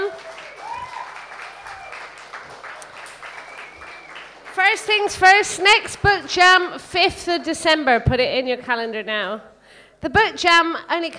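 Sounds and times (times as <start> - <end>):
room full of people applauding: 0.0 - 5.1
whistle or cheer: 0.1 - 4.4
speech: 4.6 - 11.1.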